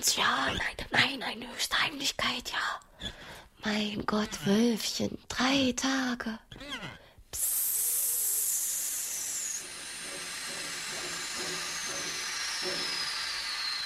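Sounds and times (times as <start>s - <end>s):
speech: 0.0s - 7.5s
steam hissing at Löwenberg railway station: 7.4s - 13.8s.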